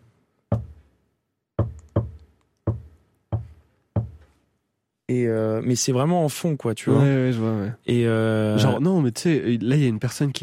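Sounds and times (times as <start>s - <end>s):
knocking on a door: 0.5s - 0.8s, 1.6s - 4.3s
speech: 5.1s - 10.4s.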